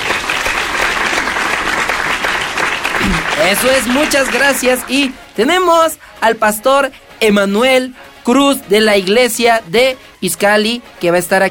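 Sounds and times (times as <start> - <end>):
crowd applause sound effect played from booth: 0.0 - 5.2
speech: 3.2 - 11.4.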